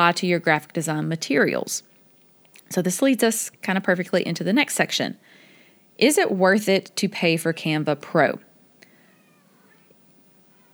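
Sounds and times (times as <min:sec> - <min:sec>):
speech: 0:00.0 - 0:01.9, 0:02.7 - 0:05.3, 0:06.0 - 0:08.5
faint room noise: 0:00.0 - 0:10.7
cat meowing in a drawn-out wavering cry: 0:09.1 - 0:09.9.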